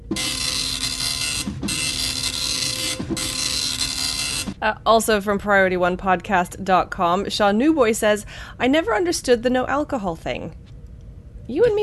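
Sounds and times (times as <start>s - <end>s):
old scroll-paper dot-matrix printer printing: 0.0s - 4.6s
speech: 4.6s - 10.6s, 11.5s - 11.8s.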